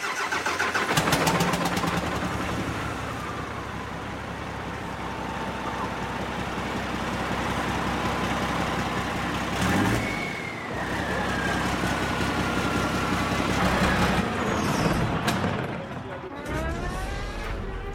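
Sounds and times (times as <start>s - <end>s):
7.4-tonne 1200-horsepower racing truck engine started with a 12-volt battery cart: 0.2s - 17.9s.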